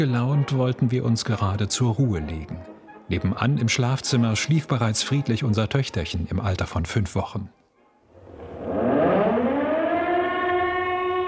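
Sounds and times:
speech: 0.0 - 7.6
air raid siren wailing: 8.1 - 11.2.

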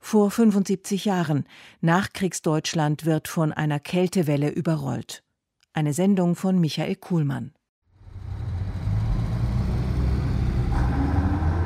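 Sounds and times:
speech: 0.1 - 5.2, 5.8 - 7.6
heavy trucks droning on the motorway from Hamburg to Bremen in winter: 8.0 - 11.6.

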